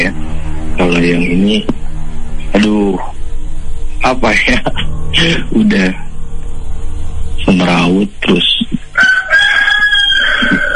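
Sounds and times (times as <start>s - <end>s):
speech: 1.0s - 1.8s, 4.0s - 6.1s, 7.4s - 9.1s
rooster crowing: 8.9s - 10.7s.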